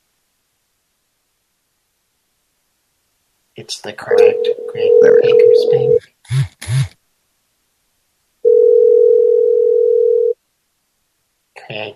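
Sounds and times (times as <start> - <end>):
speech: 3.6 - 6.9
telephone ringing tone on an outgoing call to a bank: 4.1 - 6.0, 8.5 - 10.4.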